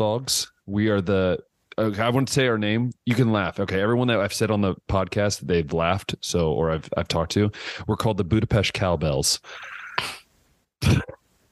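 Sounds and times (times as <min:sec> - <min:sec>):
speech: 0:00.0 - 0:10.2, 0:10.8 - 0:11.2
person coughing: 0:09.7 - 0:10.2, 0:10.8 - 0:11.2.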